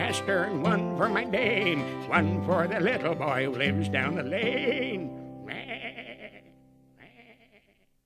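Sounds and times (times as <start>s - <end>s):
speech: 0.1s - 5.6s
sheep bleating: 4.1s - 7.9s.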